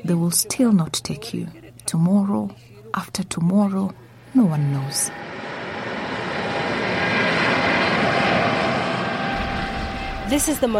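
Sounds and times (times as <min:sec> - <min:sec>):
speech: 0:00.1 - 0:05.3, 0:10.3 - 0:10.7
large white cargo plane engines roaring while arriving on the tarmac: 0:03.9 - 0:10.7.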